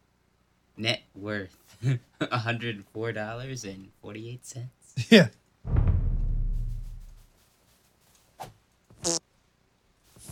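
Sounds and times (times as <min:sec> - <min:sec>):
speech: 0:00.8 - 0:05.8
rustling: 0:05.7 - 0:08.4
loud low buzzing fart: 0:09.0 - 0:09.2.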